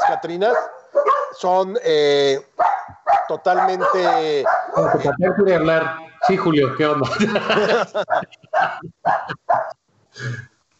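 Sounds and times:
dog barking: 0.0 - 1.4, 2.6 - 5.2, 8.0 - 9.8
speech: 0.1 - 2.6, 3.3 - 10.5
laughter: 4.7 - 9.5.

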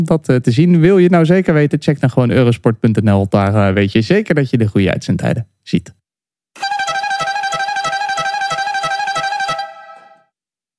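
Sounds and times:
speech: 0.0 - 6.0
loud horn tooting in repeated blasts: 6.6 - 10.3.

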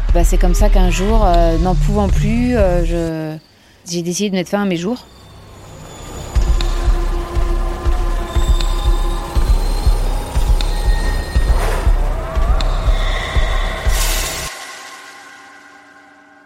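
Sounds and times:
speech: 0.2 - 5.2
high metallic squeals of metro train wheels: 5.0 - 14.5.

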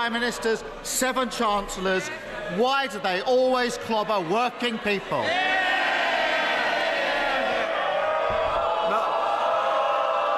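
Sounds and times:
speech: 0.0 - 5.6
many voices cheering and shouting from benches in parliament: 5.1 - 10.3.

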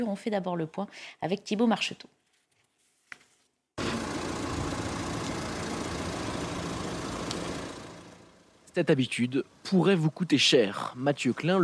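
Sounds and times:
speech: 0.0 - 2.2, 8.8 - 11.6
parked car engine idling: 3.8 - 10.5
click: 7.2 - 7.5.

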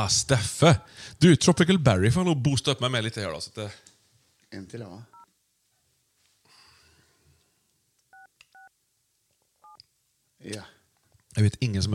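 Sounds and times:
speech: 0.0 - 3.9, 4.5 - 5.1, 10.4 - 10.7, 11.4 - 11.9
telephone keypad dual-pitch tones: 8.1 - 8.7.

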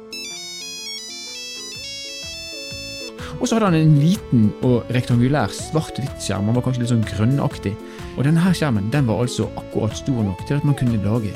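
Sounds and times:
Nokia 3410 mobile phone ringtone: 0.0 - 3.2
speech: 3.3 - 11.3.

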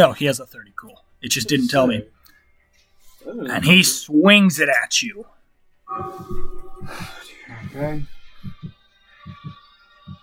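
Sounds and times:
speech: 0.0 - 2.2, 3.2 - 8.8
heartbeat sound effect thumping in low double beats: 5.9 - 10.2.

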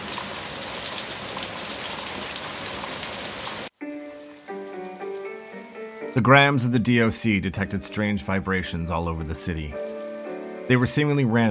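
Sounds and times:
heavy rain: 0.0 - 7.0, 9.8 - 11.4
speech: 6.1 - 9.8, 10.7 - 11.4.

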